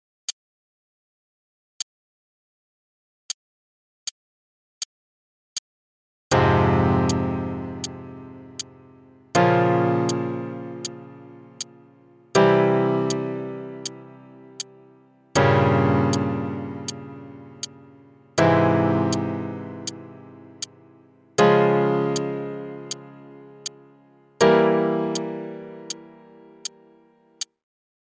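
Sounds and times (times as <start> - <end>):
primary and secondary chords in F harmonic minor in root position: 6.3 - 27.4.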